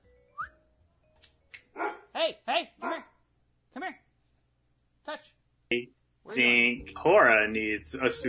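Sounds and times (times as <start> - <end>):
dog barking: 1.8 - 2.1, 2.8 - 3.1
speech: 7.0 - 8.2.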